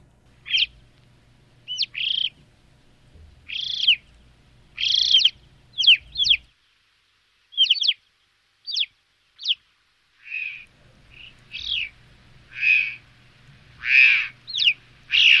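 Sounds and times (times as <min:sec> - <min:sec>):
flock of alpine choughs giving high thin whistled chirps and trills: 0:00.4 - 0:00.8, 0:01.6 - 0:02.4, 0:03.5 - 0:04.2, 0:04.8 - 0:06.5, 0:07.5 - 0:08.0, 0:08.6 - 0:09.6, 0:10.2 - 0:13.0, 0:13.8 - 0:15.3.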